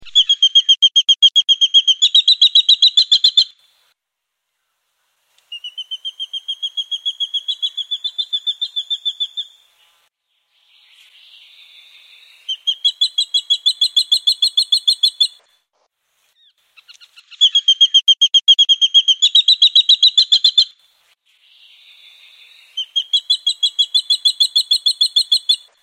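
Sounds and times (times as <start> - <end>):
brown goshawk calling: 0.0 - 3.6, 5.5 - 9.6, 12.4 - 15.5, 16.8 - 20.7, 22.7 - 25.8.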